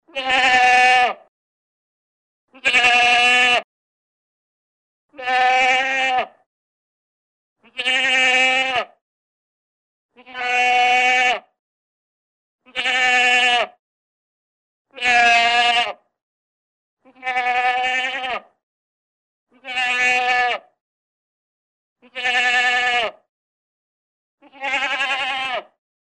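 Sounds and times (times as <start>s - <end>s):
goat bleating: 0.1s - 1.3s, 2.5s - 3.7s, 5.1s - 6.4s, 7.6s - 9.0s, 10.1s - 11.5s, 12.6s - 13.8s, 14.9s - 16.0s, 17.0s - 18.6s, 19.5s - 20.7s, 22.0s - 23.2s, 24.4s - 25.8s.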